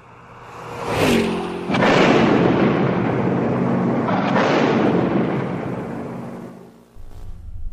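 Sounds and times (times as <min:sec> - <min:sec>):
heavy sustained roar and rumble after a mine explosion: 0:00.0 - 0:06.7
mine exploding under a car: 0:01.7 - 0:06.6.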